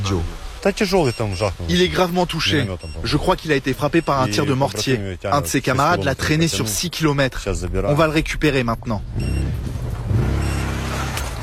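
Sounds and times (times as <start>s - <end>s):
speech: 0.1s - 9.7s
quad bike engine droning as it arrives to evacuate a wounded soldier: 9.0s - 11.4s.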